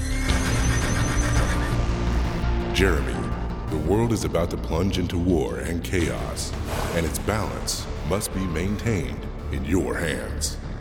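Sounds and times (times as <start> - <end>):
black horse neighing: 0.2 - 1.8
speech: 2.8 - 3.2, 3.9 - 10.6.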